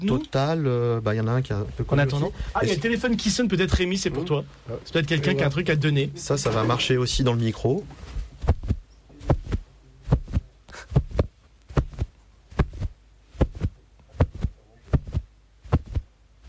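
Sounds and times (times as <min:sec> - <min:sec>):
speech: 0:00.0 - 0:08.6
foley heartbeat made by handling a piece of jacket fabric: 0:08.2 - 0:16.4.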